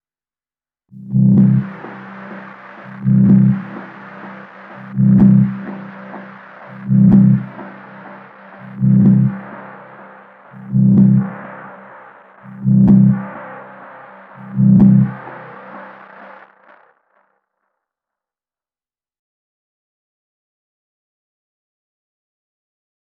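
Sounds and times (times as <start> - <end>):
lo-fi synth pad with delay: 1.0 - 16.7.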